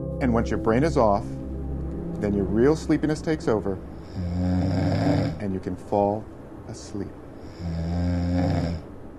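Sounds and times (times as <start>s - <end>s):
speech: 0.2s - 1.4s, 2.2s - 8.5s
person snoring with a low rasping buzzing tone: 4.0s - 5.5s, 7.4s - 8.9s.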